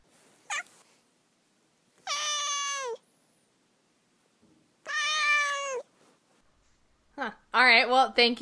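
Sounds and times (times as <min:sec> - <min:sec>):
domestic cat meowing: 0:00.5 - 0:00.7, 0:02.0 - 0:03.0, 0:04.8 - 0:05.9
speech: 0:07.2 - 0:08.4.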